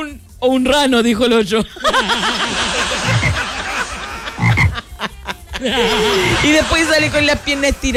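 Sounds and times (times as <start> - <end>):
speech: 0.0 - 2.7, 5.6 - 7.9
laughter: 1.7 - 7.9
frog croaking in rapid rhythmic pulses: 4.4 - 4.8.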